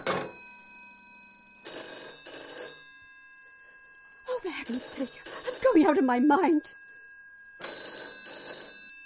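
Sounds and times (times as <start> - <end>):
old-fashioned telephone bell ringing: 0.0 - 9.0
speech: 5.9 - 6.8.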